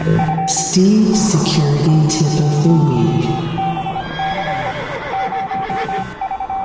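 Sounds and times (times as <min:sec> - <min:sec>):
speech: 0:00.5 - 0:03.7
horse neighing: 0:03.7 - 0:06.2.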